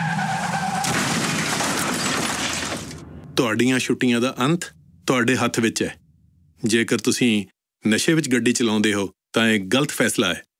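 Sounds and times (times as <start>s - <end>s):
car tires squealing in a skid: 0.0s - 3.0s
fatal car accident crash: 0.0s - 5.6s
speech: 3.4s - 6.0s, 6.6s - 10.5s.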